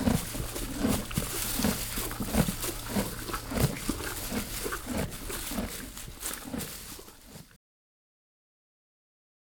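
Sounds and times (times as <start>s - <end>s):
Canadian horse chewing hay: 0.0s - 7.6s.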